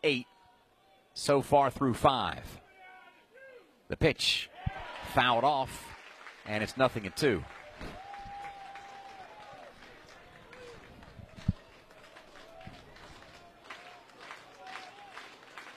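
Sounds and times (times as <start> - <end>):
speech: 0.0 - 0.3, 1.2 - 2.6, 3.9 - 4.5, 5.2 - 5.9, 6.5 - 8.0
ballpark crowd cheering at a baseball game: 4.5 - 15.7.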